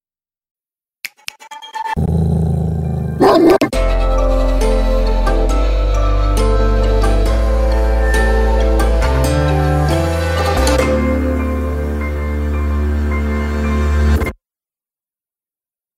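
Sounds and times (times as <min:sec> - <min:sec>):
dog barking and snarling aggressively: 0:02.0 - 0:03.8
low sustained droning tone: 0:03.8 - 0:14.0.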